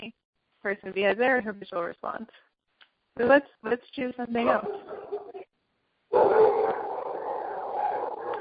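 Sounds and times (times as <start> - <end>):
speech: 0.6 - 2.5, 3.2 - 4.9
dogs barking and yowling in the background of an online call: 4.4 - 5.5, 6.1 - 8.3.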